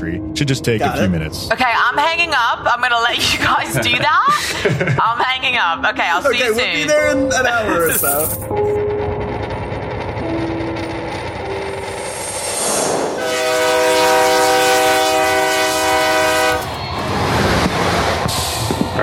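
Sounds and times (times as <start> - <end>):
speech: 0.0 - 8.8
moving train rumbling with rolling clatter: 0.0 - 19.0
laughter: 3.2 - 5.4, 7.1 - 8.0
loud sustained multi-tone train horn: 13.1 - 17.5.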